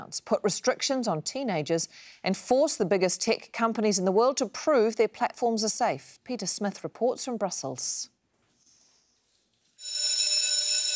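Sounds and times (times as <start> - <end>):
speech: 0.0 - 8.1
electric school bell ringing: 9.8 - 10.9.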